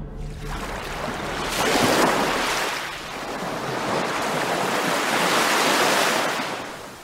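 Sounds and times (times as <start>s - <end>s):
waves crashing against a concrete pier: 1.4s - 7.0s.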